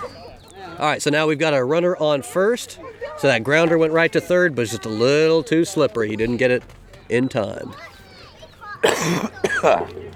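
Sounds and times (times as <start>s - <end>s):
speech: 0.8s - 7.9s, 8.9s - 10.1s
person coughing harshly and raspily: 8.8s - 9.8s.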